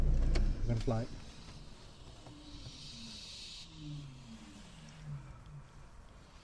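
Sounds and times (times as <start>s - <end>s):
onlookers' car engine idling: 0.0s - 1.3s
speech: 0.7s - 1.2s
young barn owls hissing at onlookers: 1.2s - 6.4s.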